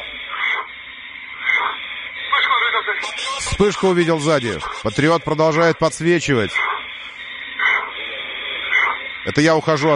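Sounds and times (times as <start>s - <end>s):
faint radio static hiss: 0.0s - 9.9s
pilot's heavy labored breathing over a narrowband radio channel: 1.8s - 5.2s, 6.8s - 9.3s
speech: 3.0s - 6.7s, 9.2s - 9.9s.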